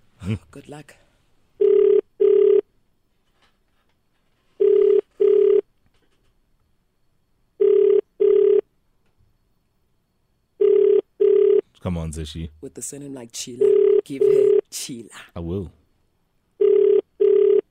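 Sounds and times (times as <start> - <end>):
speech: 0.2 - 1.0, 11.8 - 15.8
outgoing call ringback tone in double pulses: 1.6 - 2.7, 4.6 - 5.7, 7.6 - 8.6, 10.6 - 11.6, 13.6 - 14.7, 16.6 - 17.7.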